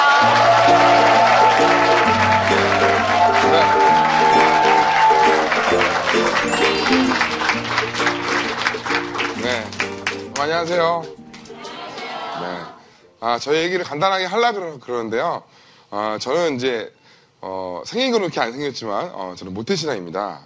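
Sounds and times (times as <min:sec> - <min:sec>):
audience clapping: 0:00.0 - 0:11.8
loud upbeat entrance music: 0:00.0 - 0:12.0
speech: 0:10.6 - 0:11.2, 0:13.2 - 0:20.4.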